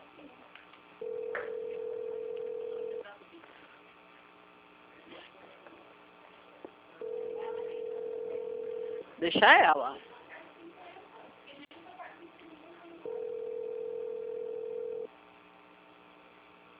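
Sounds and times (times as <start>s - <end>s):
telephone ringback tone over a thin phone line: 1.0s - 3.0s, 7.0s - 9.0s, 13.0s - 15.1s
speech: 9.2s - 10.0s.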